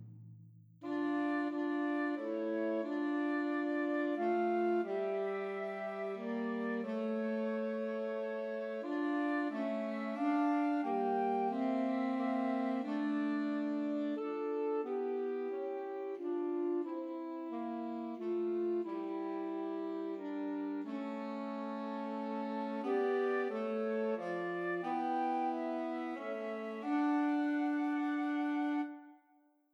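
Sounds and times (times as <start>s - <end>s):
alto saxophone: 0.8s - 29.1s
flute: 0.9s - 29.4s.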